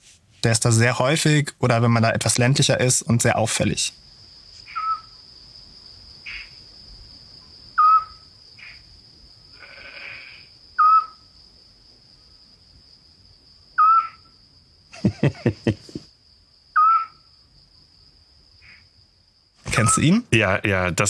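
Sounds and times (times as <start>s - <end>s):
speech: 0.4s - 4.1s, 20.0s - 21.0s
crickets trilling at night: 0.4s - 21.0s
Eurasian scops owl giving whistled notes at night: 4.7s - 5.1s, 7.8s - 8.2s, 10.8s - 11.2s, 13.8s - 14.3s, 16.8s - 17.2s
burst of laughter: 14.9s - 16.0s.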